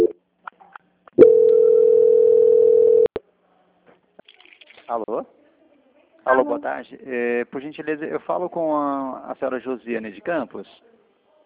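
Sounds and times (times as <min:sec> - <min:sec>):
telephone call transfer tone: 0:01.2 - 0:03.2
speech: 0:04.9 - 0:05.4, 0:06.3 - 0:10.9.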